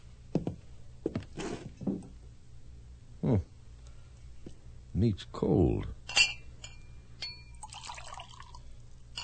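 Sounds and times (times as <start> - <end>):
low hum: 0.0 - 9.2
speech: 3.3 - 3.5, 5.0 - 6.0
light glassy clinks: 6.1 - 9.2
wine pouring into a glass for tasting: 7.6 - 8.8.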